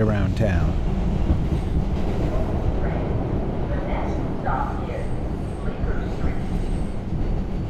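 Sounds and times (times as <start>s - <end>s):
New York City subway train rumbling along: 0.0s - 7.6s.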